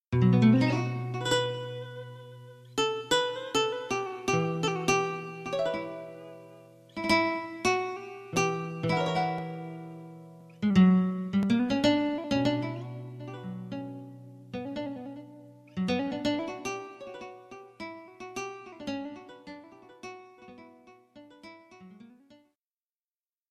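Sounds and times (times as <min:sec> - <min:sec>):
Spanish style musical lick: 0:00.2 - 0:21.6.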